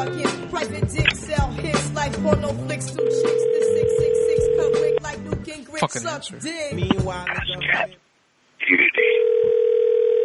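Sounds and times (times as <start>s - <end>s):
speech: 0.0s - 3.5s, 5.7s - 8.0s
telephone ringing tone of an unanswered call: 3.0s - 5.0s, 8.9s - 10.2s.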